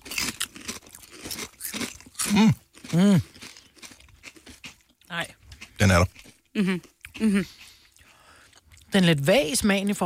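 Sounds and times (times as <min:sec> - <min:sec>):
potato chip with dip being bitten and chewed: 0:00.0 - 0:07.2
speech: 0:02.3 - 0:03.3, 0:05.1 - 0:07.6, 0:08.9 - 0:10.0.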